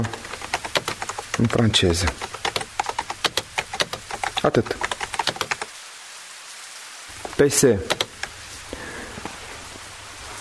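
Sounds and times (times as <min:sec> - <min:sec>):
light taps and clicks: 0:00.0 - 0:05.7, 0:07.2 - 0:08.3
rain falling: 0:00.0 - 0:10.3
speech: 0:01.4 - 0:02.4, 0:04.4 - 0:04.9, 0:07.4 - 0:08.0.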